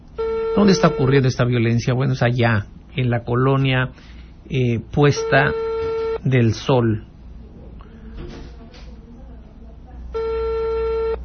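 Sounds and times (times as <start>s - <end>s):
noise: 0.0s - 11.2s
telephone ringing tone on an unanswered call to the police: 0.2s - 1.2s, 5.0s - 6.2s, 10.2s - 11.2s
speech: 0.6s - 7.1s.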